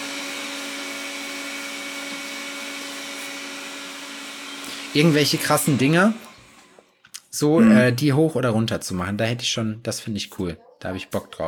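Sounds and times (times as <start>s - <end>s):
vacuum cleaner running: 0.0s - 6.9s
speech: 4.9s - 6.2s, 7.3s - 11.4s.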